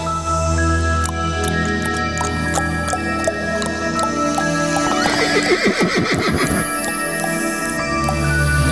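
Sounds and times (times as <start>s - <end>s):
horse hooves clip-clopping: 1.0s - 8.6s
horse neighing: 4.8s - 7.8s.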